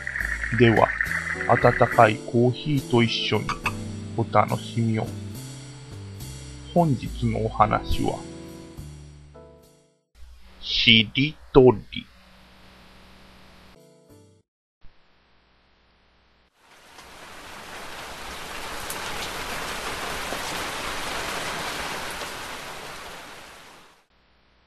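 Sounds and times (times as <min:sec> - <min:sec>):
steady rain pouring down: 0:00.0 - 0:02.2, 0:16.6 - 0:24.1
speech: 0:00.5 - 0:05.2, 0:06.8 - 0:08.3, 0:10.8 - 0:12.1.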